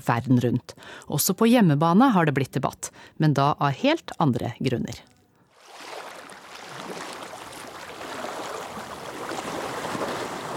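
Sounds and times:
speech: 0.0s - 5.1s
waves lapping and sloshing against a pier: 5.5s - 10.5s.

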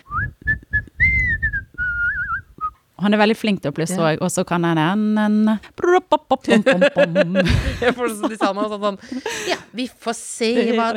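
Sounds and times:
person whistling a quick wavering tune in short bursts and trills: 0.0s - 2.8s
speech: 3.0s - 10.9s
laughter: 6.3s - 9.7s, 10.4s - 10.9s.

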